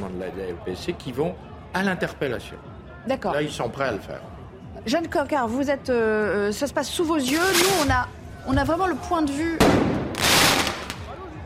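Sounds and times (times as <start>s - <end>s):
speech: 0.1s - 9.9s
firework mortar shots during street clashes: 9.6s - 11.0s.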